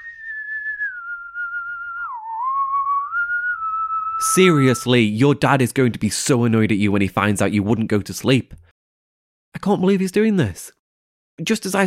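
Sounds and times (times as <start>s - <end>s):
person whistling a tune late at night: 0.0s - 4.9s
speech: 4.2s - 8.6s, 9.6s - 10.8s, 11.4s - 11.8s.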